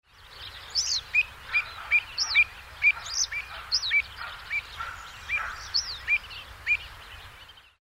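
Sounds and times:
avocet calling: 0:00.7 - 0:06.9.

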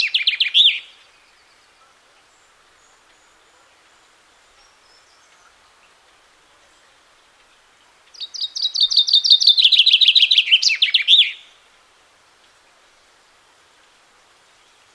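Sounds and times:
common chaffinch singing: 0:00.0 - 0:11.7.

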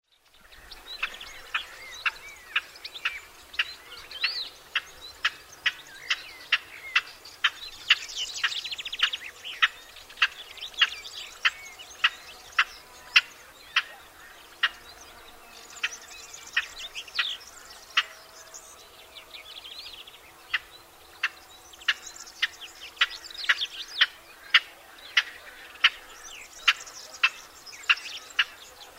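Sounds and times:
Barbary partridge calling: 0:00.6 - 0:14.8, 0:20.5 - 0:28.9.

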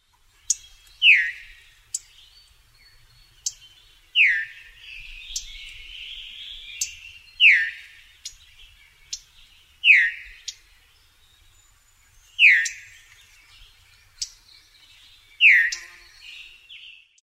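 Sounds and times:
veery calling: 0:00.1 - 0:16.9.

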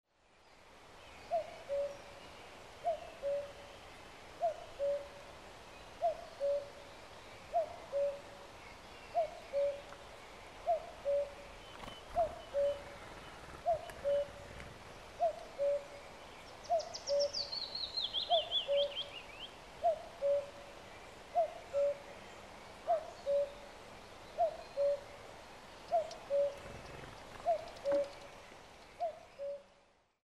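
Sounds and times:
cuckoo calling: 0:01.3 - 0:02.1, 0:02.8 - 0:03.6, 0:04.4 - 0:05.2, 0:06.0 - 0:06.8, 0:07.5 - 0:08.2, 0:09.1 - 0:10.0, 0:10.6 - 0:14.6, 0:15.2 - 0:16.0, 0:16.6 - 0:19.2, 0:19.8 - 0:20.6, 0:21.4 - 0:22.1, 0:22.9 - 0:23.6, 0:24.4 - 0:25.1, 0:25.9 - 0:29.8.

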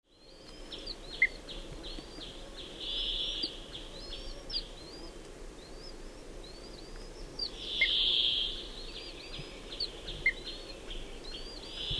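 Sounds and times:
wood sandpiper calling: 0:00.2 - 0:11.9.

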